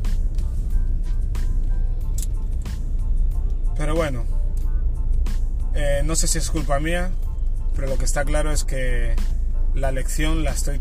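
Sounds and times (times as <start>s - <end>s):
car engine rumble heard from inside the car: 0.0s - 10.7s
road noise heard from inside the car: 0.0s - 10.7s
speech: 6.1s - 7.2s, 7.8s - 10.7s.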